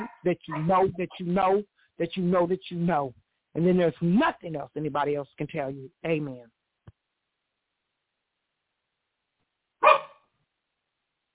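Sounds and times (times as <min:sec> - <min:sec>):
dog barking: 0:00.0 - 0:00.9, 0:09.8 - 0:10.3
speech: 0:00.2 - 0:06.6.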